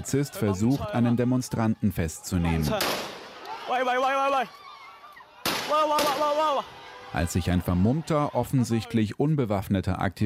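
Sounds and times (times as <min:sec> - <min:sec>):
laughter: 0:00.0 - 0:02.9, 0:07.2 - 0:09.0
speech: 0:00.0 - 0:03.1, 0:03.7 - 0:04.6, 0:05.7 - 0:10.2
people shouting at a protest: 0:00.0 - 0:08.9
people yelling: 0:00.0 - 0:09.0
police officer firing gunshots at close range: 0:02.7 - 0:03.4, 0:05.4 - 0:06.4.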